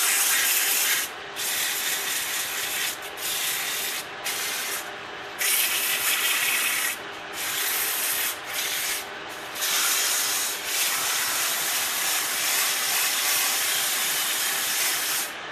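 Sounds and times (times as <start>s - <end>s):
lathe grinding: 0.1s - 15.4s.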